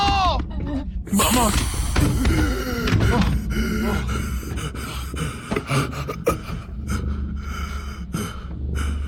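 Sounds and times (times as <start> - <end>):
speech: 1.1 - 1.8
person groaning: 1.1 - 7.1
person gasping for air with ragged strained breaths: 1.1 - 9.0.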